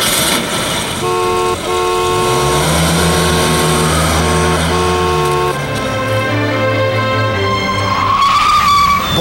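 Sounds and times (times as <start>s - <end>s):
car engine roaring: 0.0s - 9.1s
car tires squealing: 0.0s - 9.1s.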